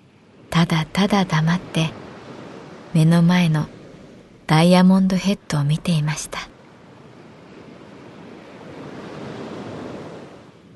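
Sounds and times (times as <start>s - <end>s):
ocean surf breaking near Diamond Head: 0.0s - 10.7s
wind near Diamond Head: 0.0s - 10.7s
speech: 0.6s - 2.0s, 2.9s - 3.8s, 4.5s - 6.5s.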